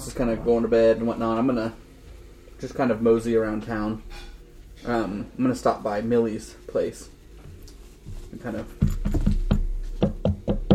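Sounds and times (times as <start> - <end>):
speech: 0.1 - 1.8, 2.6 - 7.2, 8.3 - 9.2
soft knocking on a door by someone with weak hands: 8.8 - 10.7.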